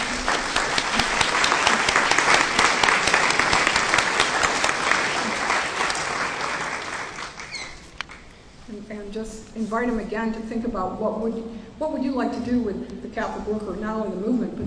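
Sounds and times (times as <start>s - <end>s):
audience applause: 0.0s - 8.3s
speech: 9.7s - 14.6s.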